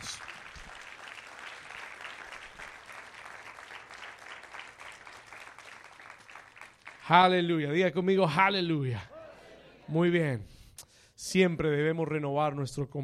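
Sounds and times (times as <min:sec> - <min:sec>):
large crowd clapping in a big room: 0:00.0 - 0:07.7
speech: 0:07.1 - 0:09.1, 0:09.9 - 0:10.5, 0:11.2 - 0:13.0.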